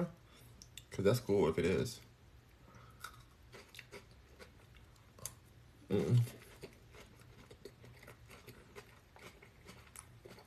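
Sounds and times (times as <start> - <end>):
speech: 0.9 - 2.1, 5.9 - 6.4
person chewing a mouthful of food: 3.0 - 10.4.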